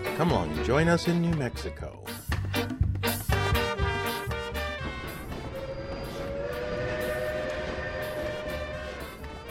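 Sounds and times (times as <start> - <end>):
speech: 0.2 - 2.8
passenger train rumbling on rails: 3.3 - 9.5
sustained metallic whine of passenger train: 4.9 - 9.5.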